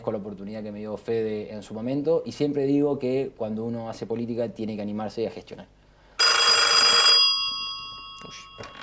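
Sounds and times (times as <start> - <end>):
speech: 0.0 - 5.8
loud bright metallic telephone bell ringing: 6.2 - 8.8.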